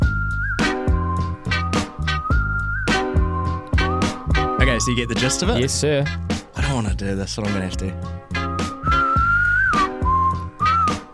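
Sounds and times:
person whistling a thin steady melody: 0.0 - 5.1, 8.5 - 11.1
rhythmic music with a heavy beat and deep bass: 0.0 - 11.1
speech: 4.8 - 8.2.

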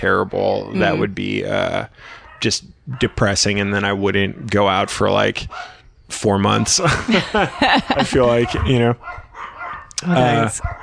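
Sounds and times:
speech: 0.0 - 9.2, 10.0 - 10.8
faint murmuring voices: 0.5 - 7.0, 8.0 - 9.1
laughter: 0.8 - 1.7, 6.6 - 9.0
dog barking: 2.1 - 3.4, 4.8 - 5.8, 7.6 - 10.8.

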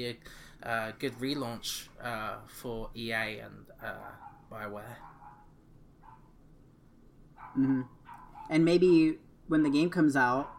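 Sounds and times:
speech: 0.0 - 5.2, 7.6 - 10.5
dog barking: 4.1 - 6.3, 7.4 - 8.6.

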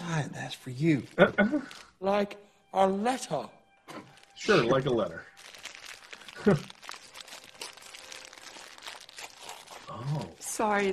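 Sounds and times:
speech: 0.1 - 5.4, 6.4 - 6.8, 9.9 - 10.9
wrapping paper being torn off a present: 4.0 - 10.9.

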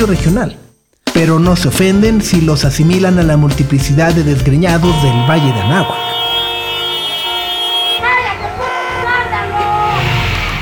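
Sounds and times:
speech: 0.0 - 0.6, 1.2 - 6.1
continuous rumble of engines: 4.4 - 9.8
busy street traffic in Mexico City humming: 4.6 - 9.9
car horn blaring in a long held tone: 4.8 - 9.6.

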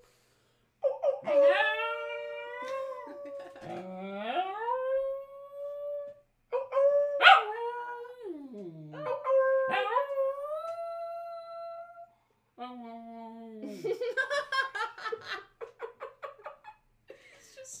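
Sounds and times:
dog howling: 0.9 - 12.1
laughter: 2.6 - 3.9, 13.6 - 16.9.

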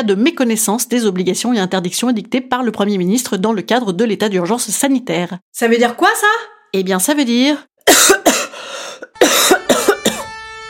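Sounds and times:
speech: 0.0 - 8.2
loud harsh coughing into a hand: 7.9 - 10.3.

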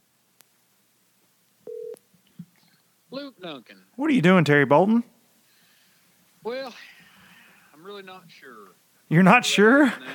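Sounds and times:
steady electronic telephone tone as a call is placed: 1.7 - 2.0
speech: 3.1 - 5.1, 7.9 - 10.1.

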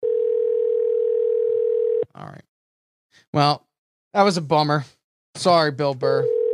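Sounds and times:
telephone ringback tone on an outgoing call: 0.0 - 2.0, 6.2 - 6.5
speech: 3.1 - 6.4.

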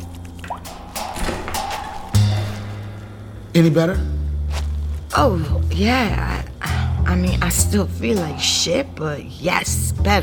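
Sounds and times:
water splashing and dripping while washing face: 0.0 - 2.7
speech: 3.6 - 4.2, 5.1 - 6.5, 7.1 - 10.2.

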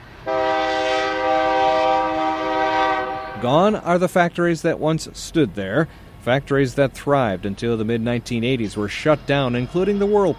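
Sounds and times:
train passing on railroad line: 0.0 - 10.3
train horn on CSX railroad line on west edge of downtown Benton Harbor: 0.2 - 3.6
speech: 3.4 - 10.3.

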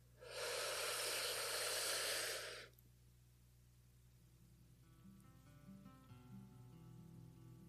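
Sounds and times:
deep breath in: 0.2 - 2.7.

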